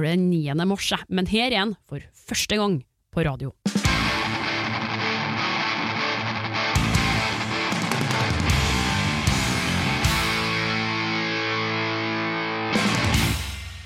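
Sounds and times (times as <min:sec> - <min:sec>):
speech: 0:00.0 - 0:03.7
heavy metal song with thick distorted guitars: 0:03.7 - 0:13.8.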